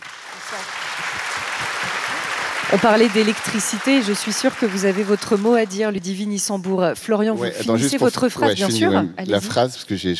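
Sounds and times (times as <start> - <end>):
audience applause welcoming a guest: 0.0 - 5.9
speech: 0.4 - 1.6, 2.7 - 10.1.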